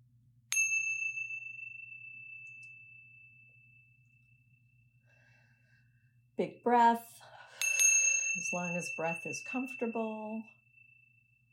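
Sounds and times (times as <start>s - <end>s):
meditation chime ringing: 0.5s - 5.1s, 7.6s - 11.5s
speech: 6.4s - 7.1s, 8.4s - 10.6s.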